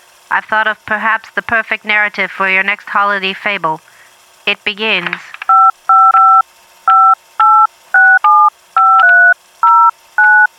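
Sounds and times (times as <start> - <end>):
speech: 0.3 - 3.9, 4.5 - 5.4
telephone keypad dialing tones: 5.4 - 10.5.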